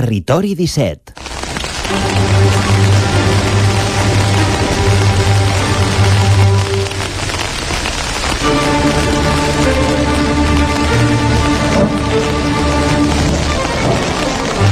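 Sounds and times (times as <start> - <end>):
speech: 0.0 - 1.3, 1.9 - 2.8
loud steady downpour of heavy rain: 1.2 - 14.6.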